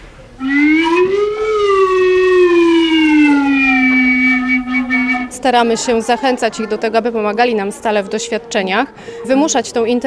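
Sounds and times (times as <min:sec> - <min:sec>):
voice imitating a siren wail during a science show for children: 0:00.4 - 0:05.4
speech: 0:05.4 - 0:10.0.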